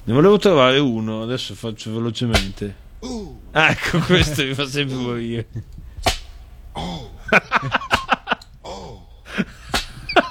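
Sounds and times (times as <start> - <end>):
speech: 0.1 - 6.1, 6.8 - 7.8
whip cracks in a played recording: 2.4 - 2.6, 6.0 - 6.4, 9.7 - 10.0
low sliding vocal groans: 3.0 - 3.6, 6.7 - 7.4, 8.6 - 9.3
laughter: 3.6 - 5.9, 7.0 - 10.2.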